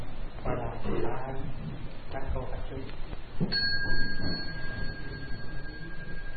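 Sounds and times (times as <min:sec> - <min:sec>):
soft hum: 0:00.0 - 0:06.3
speech: 0:00.8 - 0:04.3
single bell struck and ringing: 0:03.4 - 0:06.3.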